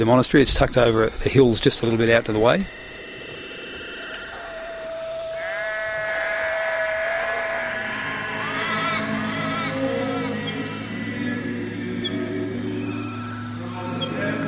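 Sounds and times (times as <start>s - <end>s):
speech: 0.0s - 2.8s
faint insect buzzing: 0.0s - 14.4s
steady low outdoor hum: 0.0s - 14.4s
several sheep bleating across a paddock: 3.5s - 14.0s.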